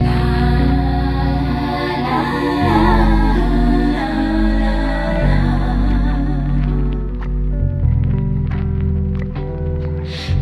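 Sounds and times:
voice: 0:00.0 - 0:07.4
jazzy, sad keyboard loops: 0:00.0 - 0:10.4.

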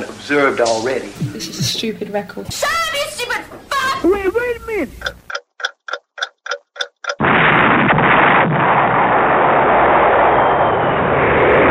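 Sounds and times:
speech: 0:00.3 - 0:05.2
quick evenly spaced ticks: 0:04.9 - 0:07.2
toilet exploding on the Nevada salt flats: 0:07.2 - 0:11.7.

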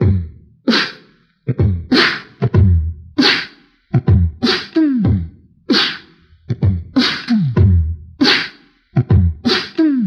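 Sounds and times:
beatbox drum loops: 0:00.0 - 0:10.0.

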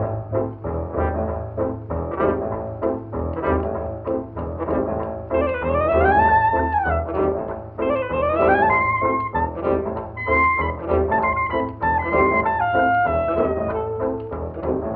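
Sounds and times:
old timey silent film piano: 0:00.0 - 0:14.9
old timey silent film saxophone: 0:05.4 - 0:14.9.

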